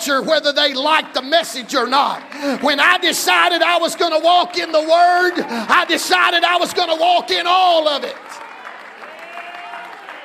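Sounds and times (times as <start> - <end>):
audience clapping hands: 0.0 - 10.2
speech: 0.1 - 8.4.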